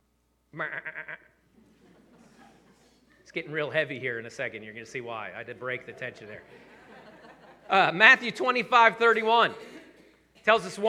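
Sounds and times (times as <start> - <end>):
faint noise: 0.0 - 10.8
speech: 0.5 - 1.2, 3.3 - 6.8, 7.7 - 9.8, 10.4 - 10.8
goat bleating: 0.6 - 1.4
laughter: 0.6 - 10.8.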